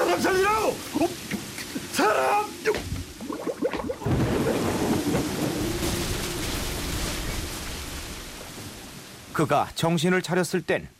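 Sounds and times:
heavy rain downpour at sea: 0.0s - 10.9s
wind at sea: 0.0s - 10.9s
speech: 0.2s - 1.3s, 9.4s - 10.9s
rumbling thunder at sea: 3.3s - 9.3s.

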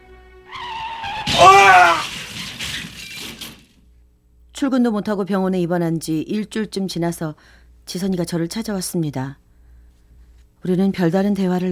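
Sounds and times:
tire skid squealing: 0.5s - 3.4s
loud car crash with warbling screech: 0.5s - 3.8s
rattling clatter of debris: 1.2s - 3.8s
speech: 4.6s - 9.4s, 10.6s - 11.6s.

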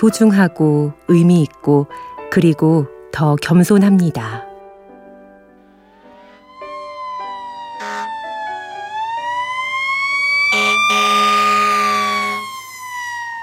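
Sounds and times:
speech: 0.0s - 4.5s
loud fire truck siren wailing: 5.5s - 13.4s.

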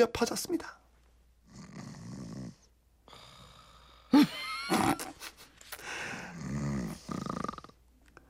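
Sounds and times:
speech: 0.0s - 0.8s, 4.1s - 4.9s
elderly woman snoring while dozing in a classroom: 1.5s - 5.1s, 5.9s - 7.8s.

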